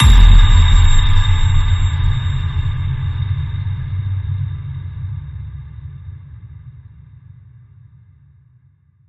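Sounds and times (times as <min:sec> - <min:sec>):
high ping in A sharp: 0:00.0 - 0:04.2.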